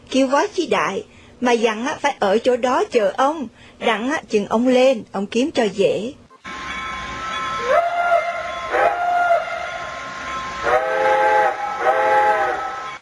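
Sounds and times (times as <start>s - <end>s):
speech: 0.1s - 6.2s
continuous rumble of rail noise: 6.3s - 13.0s
steam train whistle blasts as it departs: 6.3s - 13.0s.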